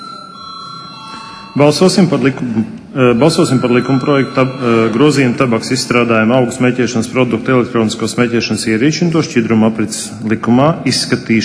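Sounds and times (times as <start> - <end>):
electric bell ringing in a parliamentary chamber to call a vote: 0.0 - 7.3
speech: 1.6 - 11.4.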